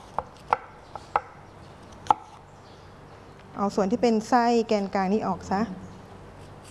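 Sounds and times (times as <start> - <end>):
knife chopping apple on a cutting board: 0.0 - 1.4
speech: 3.6 - 5.8.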